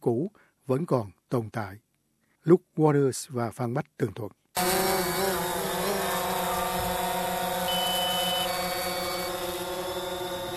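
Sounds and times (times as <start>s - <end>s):
speech: 0.0s - 4.8s
drone motor buzzing above Hereford cattle on a farm in Victoria Australia: 4.6s - 10.5s.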